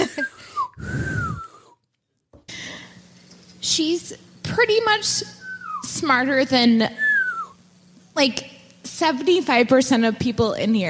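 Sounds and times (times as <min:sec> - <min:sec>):
person attempting to whistle with breathy air: 0:00.0 - 0:01.8, 0:05.3 - 0:06.1, 0:06.9 - 0:07.6
speech: 0:03.6 - 0:07.0, 0:08.2 - 0:10.8.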